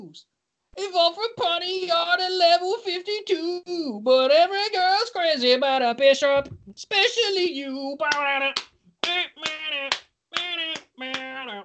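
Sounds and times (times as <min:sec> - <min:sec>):
speech: 0:00.1 - 0:10.0
sharp hand claps: 0:08.0 - 0:11.6
sustained voice humming or singing: 0:08.0 - 0:11.6.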